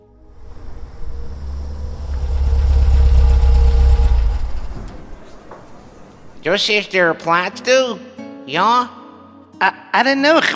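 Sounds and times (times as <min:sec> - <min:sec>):
car engine idling: 0:00.0 - 0:06.5
speech: 0:06.4 - 0:09.0, 0:09.6 - 0:10.5.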